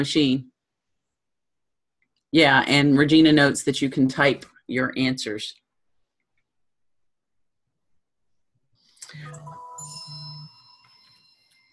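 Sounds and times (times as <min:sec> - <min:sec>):
speech: 0:00.0 - 0:00.5, 0:02.3 - 0:05.6
mobile phone ringtone: 0:09.1 - 0:11.7.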